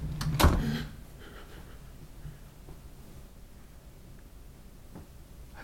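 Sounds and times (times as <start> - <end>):
door clunking as it swings open: 0.1 - 1.0.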